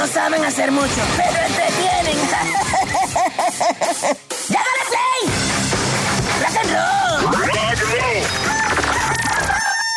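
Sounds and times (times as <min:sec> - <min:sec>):
speech: 0:00.2 - 0:05.8
laughter: 0:01.1 - 0:04.4, 0:06.5 - 0:09.9
rooster crowing: 0:08.4 - 0:09.9.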